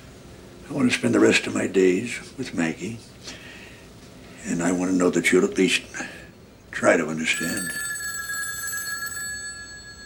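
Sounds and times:
speech: 0.7s - 3.4s, 4.4s - 6.2s, 6.8s - 7.8s
telephone ringing: 7.3s - 10.0s.

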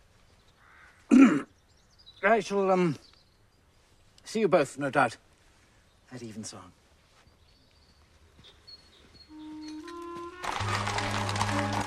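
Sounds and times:
speech: 2.2s - 3.1s, 4.3s - 5.2s, 6.1s - 6.8s
horse hooves clopping on a busy London street: 7.6s - 11.8s
horse carriage wheels rolling on a busy London street: 9.8s - 11.8s.

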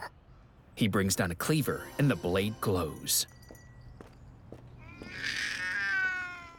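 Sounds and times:
speech: 0.8s - 3.4s
cat meowing: 4.8s - 6.5s.

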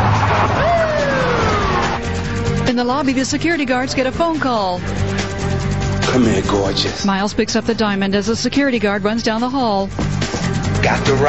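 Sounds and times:
police car siren wailing on a street: 0.0s - 2.4s
steady roar of traffic: 0.0s - 2.7s
speech: 2.7s - 5.2s, 6.1s - 11.2s.

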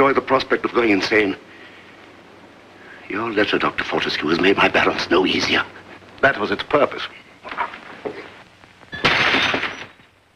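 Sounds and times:
speech: 0.0s - 1.5s, 3.1s - 7.7s
brandy glass thrown and shattering: 8.9s - 10.2s.

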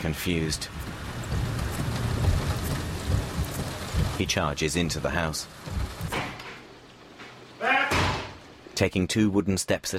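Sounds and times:
speech: 0.0s - 0.9s, 4.2s - 5.8s, 8.8s - 9.9s
steady rain falling on a driveway: 0.0s - 7.6s.

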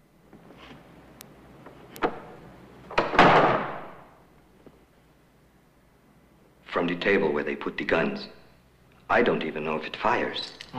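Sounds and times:
trapdoor leading up to a belfry slamming shut: 2.9s - 4.1s
speech: 6.8s - 8.4s, 9.1s - 10.7s.

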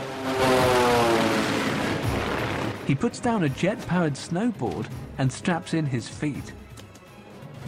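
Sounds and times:
seaplane engine droning heading back from a mountain drop-off in the Cascade Mountains: 0.0s - 2.8s
speech: 2.9s - 6.6s.

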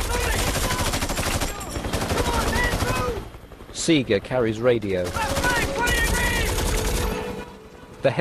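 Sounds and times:
heavy rapid automatic battle gunfire: 0.0s - 3.3s, 4.8s - 7.4s
speech: 3.9s - 5.4s.

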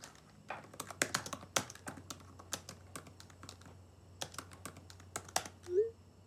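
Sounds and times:
person typing on a laptop keyboard: 0.0s - 5.7s.

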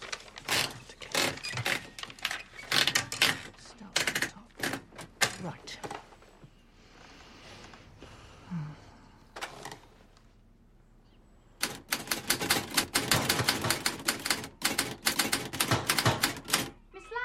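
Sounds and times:
typewriter being shaken with metallic rattles and knocks: 0.0s - 5.6s, 11.6s - 16.8s.

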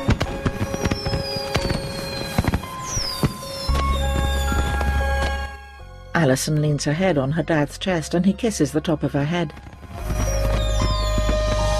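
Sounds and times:
fireworks shooting into the evening sky from a boat on a lake: 0.0s - 5.6s, 9.6s - 11.7s
speech: 6.2s - 9.7s.

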